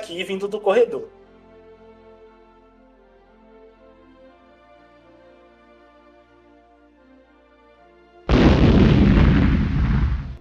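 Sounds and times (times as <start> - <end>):
speech: 0.1 - 1.2
loud nuclear explosion sound effect roaring and rumbling: 8.3 - 10.3.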